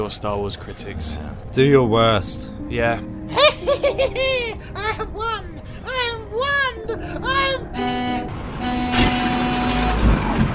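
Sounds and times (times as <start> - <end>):
truck engine roar as it drives up: 0.0 - 3.9, 6.9 - 10.5
speech: 0.0 - 5.6
laughter: 3.3 - 5.3
truck horn honking: 7.4 - 10.5.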